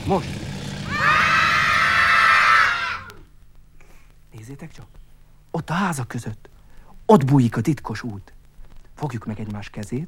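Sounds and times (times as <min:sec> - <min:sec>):
speech: 0:00.1 - 0:01.0, 0:04.5 - 0:06.5, 0:07.1 - 0:08.4, 0:09.0 - 0:10.0
group of children shouting loudly together: 0:00.8 - 0:03.3.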